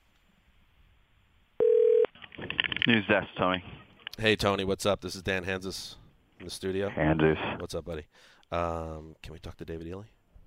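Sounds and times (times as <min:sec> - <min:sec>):
steady electronic telephone tone of a call to a news desk: 0:01.6 - 0:02.1
speech: 0:02.9 - 0:10.2.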